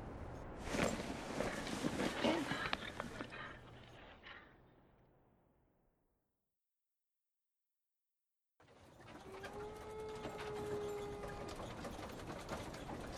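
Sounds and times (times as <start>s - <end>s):
steady outdoor ambience: 0.0s - 6.0s, 8.6s - 13.1s
rustling noise: 0.2s - 4.2s
distant wolf howl: 9.1s - 11.9s.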